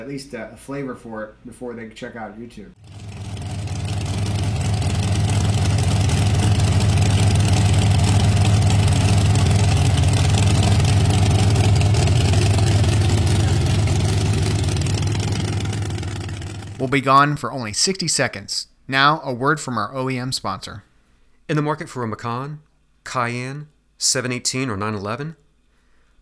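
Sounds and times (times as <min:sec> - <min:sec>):
speech: 0:00.0 - 0:03.0, 0:16.8 - 0:20.9, 0:21.5 - 0:25.4
car engine idling in a driveway: 0:02.8 - 0:17.2.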